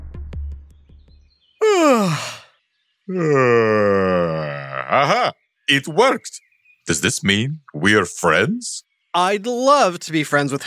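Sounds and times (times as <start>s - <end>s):
person yawning with a falling voiced tone: 1.6s - 2.5s, 3.1s - 5.3s
speech: 2.0s - 2.4s, 3.1s - 3.7s, 4.9s - 10.6s.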